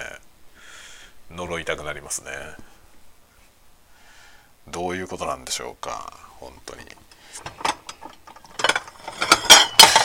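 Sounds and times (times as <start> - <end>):
speech: 1.3 - 2.8, 4.7 - 7.7
hard polypropylene plastic plates clattering and knocking together: 6.8 - 10.0.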